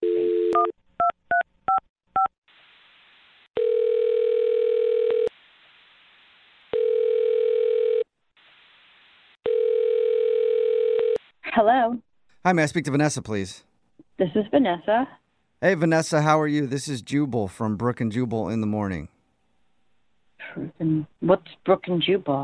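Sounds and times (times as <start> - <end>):
telephone ringback tone: 0.0 - 0.7, 3.6 - 5.3, 6.8 - 8.1, 9.4 - 11.2
speech: 11.6 - 19.1, 20.5 - 22.4.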